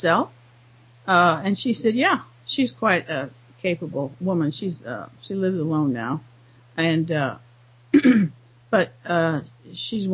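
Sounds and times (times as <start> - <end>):
speech: 0.0 - 0.4, 1.0 - 10.1
low steady hum: 0.0 - 10.1
person with a throat problem clearing throat: 8.0 - 8.4.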